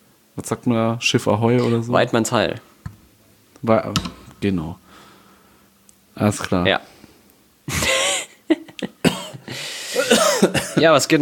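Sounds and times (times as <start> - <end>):
speech: 0.4 - 2.7, 3.6 - 4.8, 6.2 - 7.0, 10.1 - 11.2
person coughing: 1.6 - 1.9, 9.0 - 10.9.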